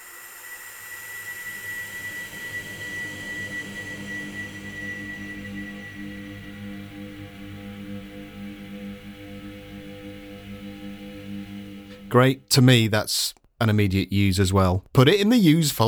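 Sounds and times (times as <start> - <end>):
humming electric drone: 0.0 - 12.4
thin high whine: 0.0 - 12.8
speech: 12.1 - 15.8.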